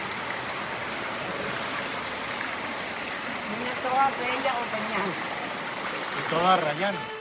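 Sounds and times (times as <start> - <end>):
garden fountain water splashing: 0.0 - 7.2
speech: 3.5 - 5.4, 6.2 - 7.1.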